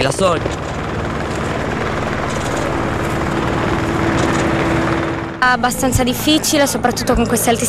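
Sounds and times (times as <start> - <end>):
speech: 0.0 - 0.6, 5.4 - 7.6
numerous helicopters flying overhead in very high temperatures: 0.0 - 7.6.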